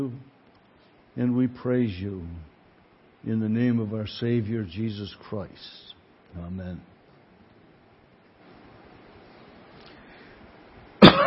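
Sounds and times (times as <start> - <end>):
speech: 0.0 - 0.3, 1.2 - 2.5, 3.2 - 6.9
faint steady hiss: 0.0 - 11.2
sharp loud cough: 11.0 - 11.2.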